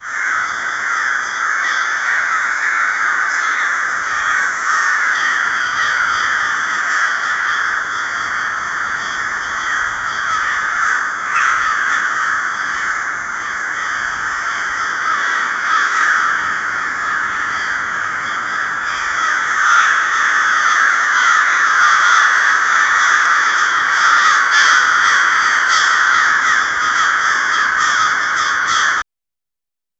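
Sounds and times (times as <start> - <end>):
crows calling: 0.0 - 29.0.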